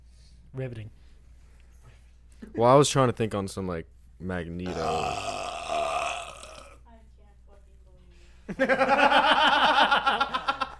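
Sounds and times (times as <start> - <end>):
speech: 0.5 - 1.0, 2.4 - 5.4, 8.6 - 9.3
loud rough burp: 4.7 - 6.8
pulsing laughter from several people: 8.5 - 10.7.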